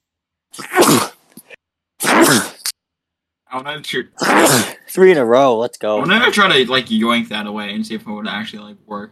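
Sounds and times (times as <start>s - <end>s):
sneezes: 0.6s - 1.2s, 2.0s - 2.7s, 4.2s - 4.9s
speech: 3.6s - 9.1s.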